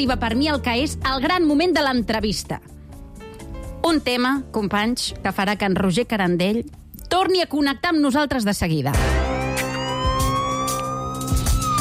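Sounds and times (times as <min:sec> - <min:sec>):
speech: 0:00.0 - 0:02.8, 0:03.8 - 0:09.2
police siren wailing: 0:09.1 - 0:11.7.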